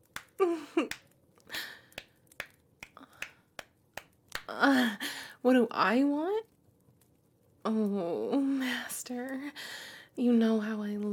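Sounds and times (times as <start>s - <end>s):
buttocks clapping together, skin slapping: 0.0s - 1.1s, 1.9s - 4.5s
speech: 0.4s - 1.0s, 4.5s - 6.5s, 7.7s - 11.1s.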